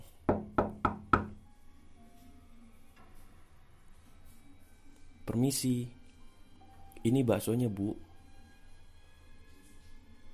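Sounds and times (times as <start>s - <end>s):
bakso seller knocking on a closed wooden front door of a house: 0.3s - 1.4s
speech: 5.3s - 6.0s, 7.0s - 8.1s.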